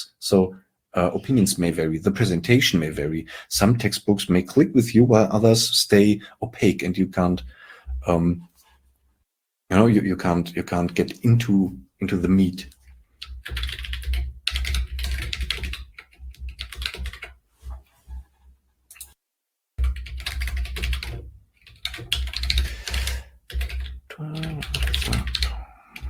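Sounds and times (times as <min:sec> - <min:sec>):
speech: 0:00.0 - 0:08.5, 0:09.7 - 0:12.8, 0:13.5 - 0:13.8
rapid typing on a computer keyboard: 0:13.2 - 0:17.4, 0:19.8 - 0:26.0.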